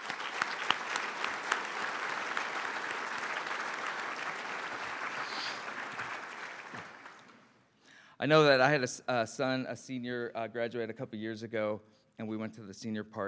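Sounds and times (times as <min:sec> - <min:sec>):
crowd clapping: 0:00.0 - 0:07.6
speech: 0:08.2 - 0:13.2.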